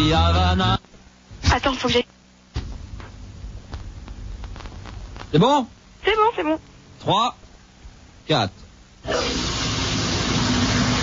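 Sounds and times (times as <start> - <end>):
speech: 0.0 - 0.9, 1.5 - 2.2, 5.3 - 7.4, 8.3 - 9.4
shower spraying water: 9.1 - 11.0.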